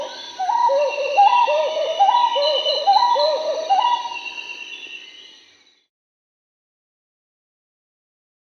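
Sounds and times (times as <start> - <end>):
Marbled Wood-Quail song of mellow hooting phrases in South America: 0.0 - 4.8.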